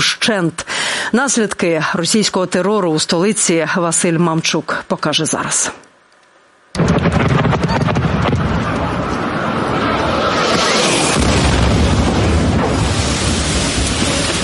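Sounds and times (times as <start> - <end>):
speech: 0.0 - 5.9
sustained roaring rumbling wash of noise: 6.8 - 14.4
very loud explosion: 6.8 - 14.4.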